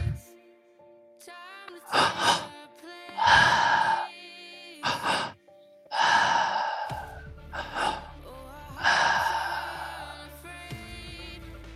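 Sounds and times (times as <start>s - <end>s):
slow deep breathing during breathwork: 1.9s - 2.5s, 3.2s - 4.1s, 4.8s - 10.3s.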